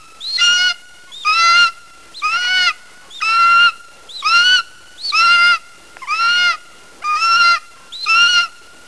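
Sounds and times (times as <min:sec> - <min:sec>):
golden eagle giving harsh yelps: 0:00.3 - 0:08.5.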